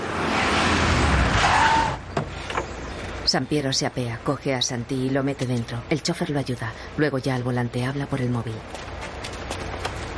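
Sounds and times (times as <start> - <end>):
white Mercedes car arriving: 0.0 - 4.1, 8.6 - 10.1
speech: 3.3 - 8.9.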